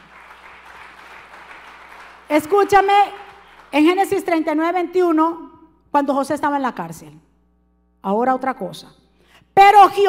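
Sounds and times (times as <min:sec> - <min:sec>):
congregation applauding: 0:00.0 - 0:03.8
speech: 0:02.3 - 0:07.3, 0:08.0 - 0:09.0, 0:09.6 - 0:10.0.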